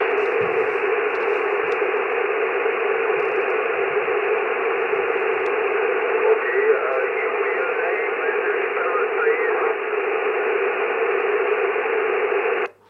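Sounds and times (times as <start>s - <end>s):
band-limited static from an amateur radio: 0.0s - 12.7s.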